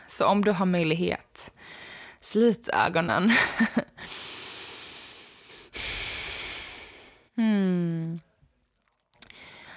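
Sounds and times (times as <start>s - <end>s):
speech: 0.2s - 4.2s
slow deep breathing: 4.0s - 7.4s, 9.3s - 9.7s.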